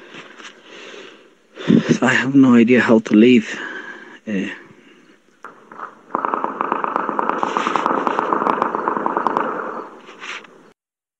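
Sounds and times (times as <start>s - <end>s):
speech: 1.9s - 3.7s, 4.3s - 4.6s
distant gunshots: 5.4s - 10.6s.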